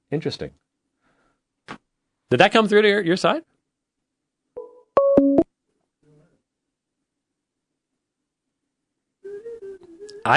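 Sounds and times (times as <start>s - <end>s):
speech: 0.1s - 0.6s, 2.3s - 3.5s
electronic phone ringtone played through a computer: 4.6s - 5.4s.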